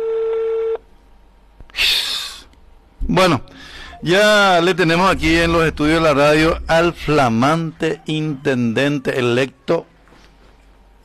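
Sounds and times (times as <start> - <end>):
telephone tone on a call placed to a police headquarters: 0.0 - 0.8
speech: 3.1 - 9.9.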